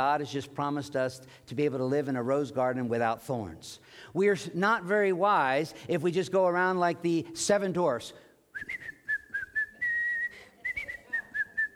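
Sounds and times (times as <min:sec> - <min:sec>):
speech: 0:00.0 - 0:08.9
person whistling a bouncy upbeat melody: 0:08.6 - 0:11.7.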